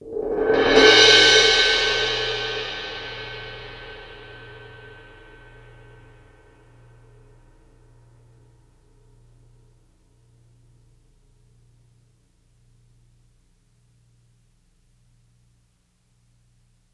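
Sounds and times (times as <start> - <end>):
suspended cymbal short roll to crash: 0.0 - 7.2.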